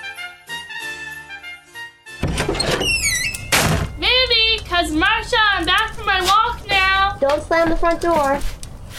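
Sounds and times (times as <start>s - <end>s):
front door opening and shutting with heavy thumps: 2.1s - 4.2s
lively voices talking: 4.0s - 8.5s.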